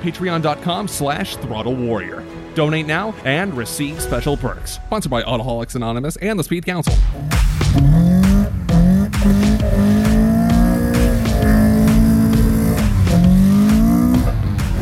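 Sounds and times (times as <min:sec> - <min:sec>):
speech: 0:00.0 - 0:07.6
car engine revving: 0:07.0 - 0:14.7
car tires squealing: 0:07.2 - 0:14.7.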